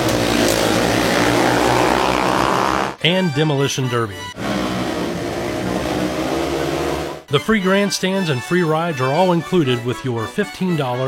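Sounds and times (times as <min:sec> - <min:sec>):
truck engine roaring in a rough truck contest at a county fair: 0:00.0 - 0:03.0, 0:04.1 - 0:07.3
speech: 0:03.0 - 0:04.4, 0:07.3 - 0:11.0.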